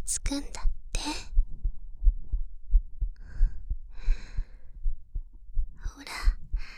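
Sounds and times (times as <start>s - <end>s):
slow steady heartbeat: 0.0s - 6.7s
speech: 0.1s - 1.2s
soft airy breath: 3.2s - 4.9s, 5.8s - 6.7s.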